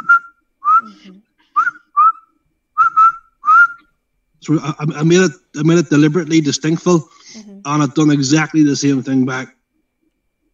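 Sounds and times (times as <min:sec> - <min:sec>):
person whistling a distinctive call: 0:00.0 - 0:02.2, 0:02.8 - 0:03.9
speech: 0:04.4 - 0:09.6.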